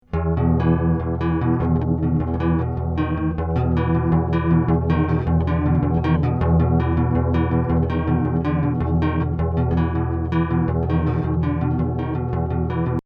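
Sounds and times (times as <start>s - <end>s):
bass with chorus effect: 0.0s - 13.0s.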